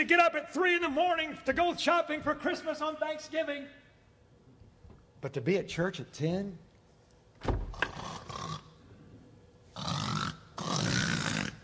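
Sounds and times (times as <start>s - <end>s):
speech: 0.0s - 3.8s, 5.2s - 6.7s, 7.4s - 7.6s
voice imitating loud snoring: 7.9s - 8.8s, 9.8s - 11.6s.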